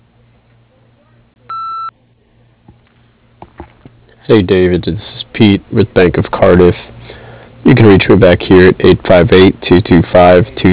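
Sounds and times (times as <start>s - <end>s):
answering machine beep tone: 1.5s - 1.9s
speech: 4.3s - 6.9s, 7.8s - 10.7s.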